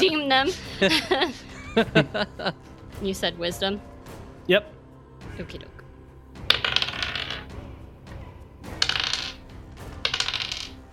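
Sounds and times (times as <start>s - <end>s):
laughter: 0.0s - 2.6s
speech: 0.0s - 3.9s, 4.5s - 5.8s
two dice clattering across a hard surface in a tabletop role-playing game: 6.5s - 7.5s, 8.8s - 9.4s, 10.0s - 10.8s.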